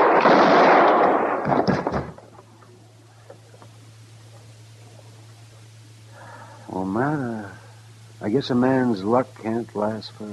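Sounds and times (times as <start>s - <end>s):
gunfire in a western radio drama standoff: 0.0s - 2.4s
speech: 8.3s - 10.3s.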